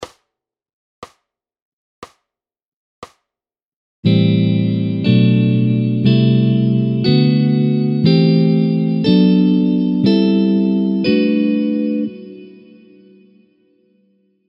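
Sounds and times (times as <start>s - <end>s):
jazz guitar Am7 drop 2 chord: 4.1s - 13.4s.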